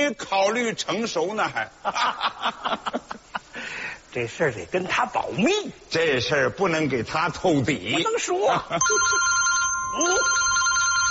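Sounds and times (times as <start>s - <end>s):
speech: 0.1s - 10.5s
telephone ringing with an incoming call: 8.8s - 11.0s.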